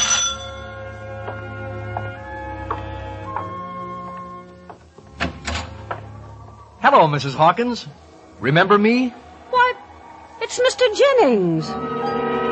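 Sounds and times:
doorbell chimes: 0:00.0 - 0:00.9
speech: 0:06.8 - 0:09.2, 0:10.5 - 0:12.0.

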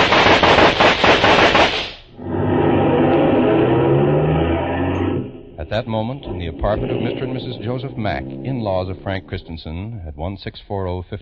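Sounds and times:
gunshots fired in the street: 0:00.0 - 0:02.1
rumbling engine-like drone: 0:02.1 - 0:10.4
speech: 0:05.8 - 0:11.2.

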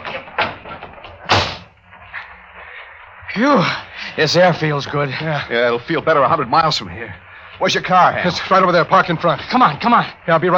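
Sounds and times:
door thumps as people go out through it: 0:00.0 - 0:01.7
speech: 0:03.4 - 0:10.5.

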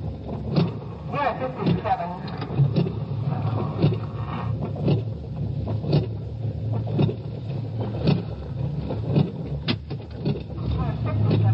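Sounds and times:
car engine rumbling at slow speed: 0:00.0 - 0:11.5
knocks and clicks: 0:00.0 - 0:11.5
indistinct voices: 0:01.1 - 0:04.5, 0:10.6 - 0:11.5.

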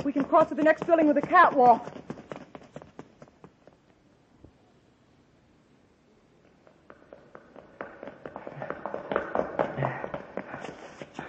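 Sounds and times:
speech: 0:00.0 - 0:02.0
footsteps of people running up a flight of stairs in a building: 0:00.0 - 0:03.8, 0:06.6 - 0:11.2.

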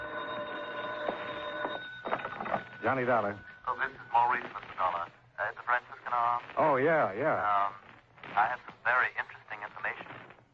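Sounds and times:
telephone ringing: 0:00.0 - 0:06.4
speech: 0:02.8 - 0:03.5, 0:06.2 - 0:07.8, 0:08.4 - 0:09.1
faint hiss: 0:02.8 - 0:10.5.

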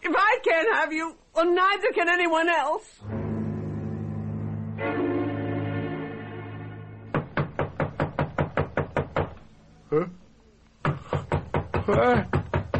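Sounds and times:
speech: 0:00.9 - 0:03.2, 0:09.9 - 0:10.2, 0:11.9 - 0:12.4
sustained low hum: 0:03.0 - 0:07.2
people pounding on a door demanding it be opened: 0:07.1 - 0:09.4, 0:10.8 - 0:12.7.

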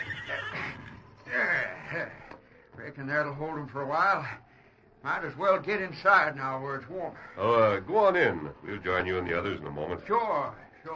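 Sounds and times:
horses neighing inside a barn: 0:00.0 - 0:02.4
speech: 0:03.0 - 0:10.9.

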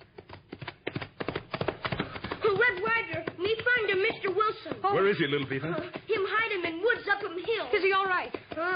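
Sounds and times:
horse hooves clip-clopping as a rider arrives: 0:00.0 - 0:08.7
speech: 0:04.1 - 0:08.7.

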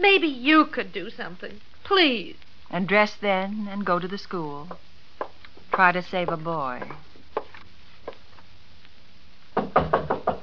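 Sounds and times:
speech: 0:00.0 - 0:04.9, 0:05.7 - 0:07.1
faint taps: 0:04.7 - 0:08.5
knocking on a wooden door: 0:09.6 - 0:10.4.

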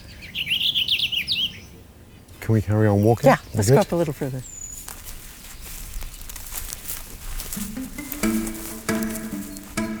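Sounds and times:
purple finch singing: 0:00.0 - 0:09.9
speech: 0:02.5 - 0:04.5.

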